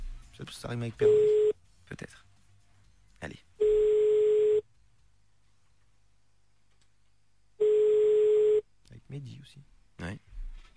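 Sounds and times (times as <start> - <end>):
speech: 0.4 - 2.3, 9.2 - 10.2
ringback tone of an outgoing phone call: 1.0 - 1.6, 3.6 - 4.6, 7.6 - 8.6.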